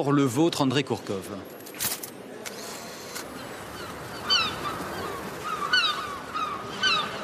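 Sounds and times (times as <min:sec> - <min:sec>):
speech: 0:00.0 - 0:01.6
seagulls calling: 0:03.2 - 0:07.2.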